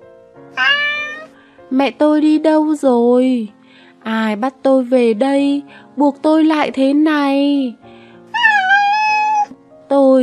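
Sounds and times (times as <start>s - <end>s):
kitten meowing: 0.6s - 1.4s, 8.3s - 9.6s
speech: 1.7s - 7.8s, 9.9s - 10.2s.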